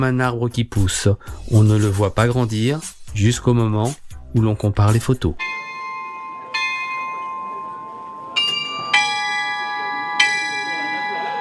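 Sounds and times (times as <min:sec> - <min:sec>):
speech: 0:00.0 - 0:05.6
church bells ringing: 0:05.4 - 0:11.3
low steady murmur: 0:05.4 - 0:11.3.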